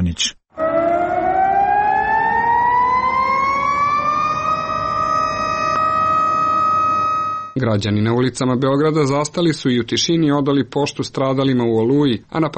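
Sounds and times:
speech: 0.2s - 0.4s, 7.6s - 12.5s
civil-defence sirens wailing across a Serbian city at noon for remembrance: 0.5s - 7.6s.

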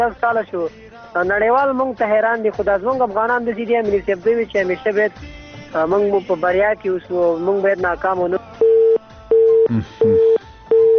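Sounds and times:
speech: 0.0s - 8.5s, 9.7s - 10.4s
telephone busy tone after a dropped call: 8.6s - 10.9s.

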